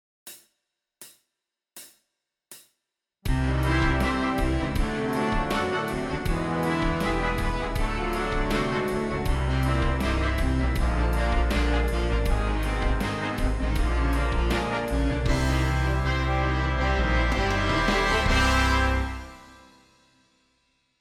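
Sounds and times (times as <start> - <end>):
horns playing a basic daily warm-up in fifths: 3.3 - 20.0.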